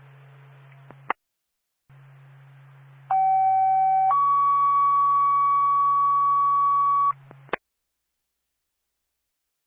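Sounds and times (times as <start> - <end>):
two-tone fire department dispatch page over a radio channel: 3.1 - 7.2.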